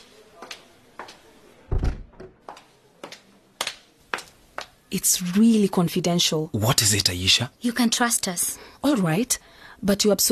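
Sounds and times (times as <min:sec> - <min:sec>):
door thudding shut: 0:01.7 - 0:02.4
speech: 0:04.9 - 0:10.3.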